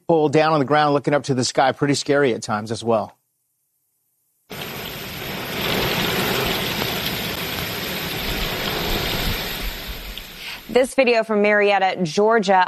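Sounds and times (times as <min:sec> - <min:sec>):
speech: 0:00.1 - 0:03.2, 0:10.8 - 0:12.6
heavy rain pouring down: 0:04.5 - 0:10.9.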